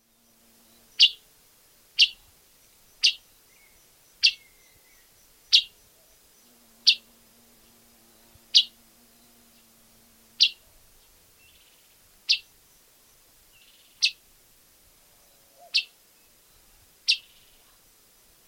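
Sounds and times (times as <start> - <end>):
red tanager: 2.9 - 5.8, 6.4 - 7.1, 8.1 - 9.7, 10.4 - 10.7, 13.6 - 14.2, 15.3 - 17.8.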